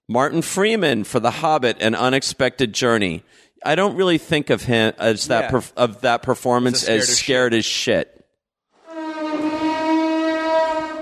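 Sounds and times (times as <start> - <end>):
speech: 0.1 - 8.2
passing train horn blast: 8.8 - 11.0.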